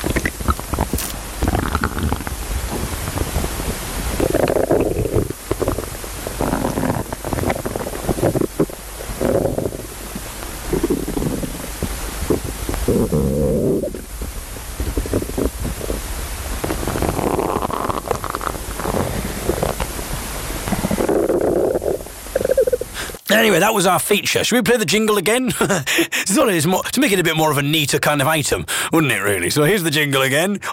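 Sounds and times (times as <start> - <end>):
person's stomach rumbling and gurgling: 0.0 - 23.2
speech: 23.4 - 30.7.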